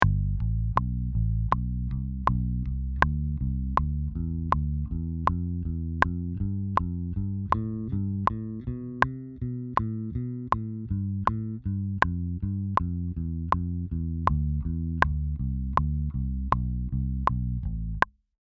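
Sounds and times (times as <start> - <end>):
bass playing a scale: 0.0 - 18.1.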